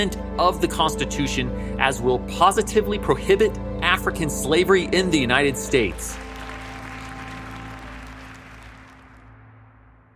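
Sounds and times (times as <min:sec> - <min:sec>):
speech: 0:00.0 - 0:06.2
large crowd applauding: 0:05.8 - 0:09.4.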